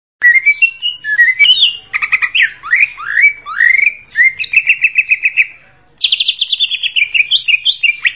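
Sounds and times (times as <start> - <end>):
greater green leafbird singing whistled slurs and chattering trills: 0.2 - 8.1.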